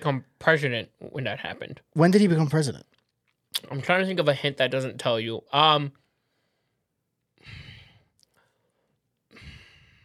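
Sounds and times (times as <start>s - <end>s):
speech: 0.0s - 6.0s
heavy breathing: 6.1s - 10.0s.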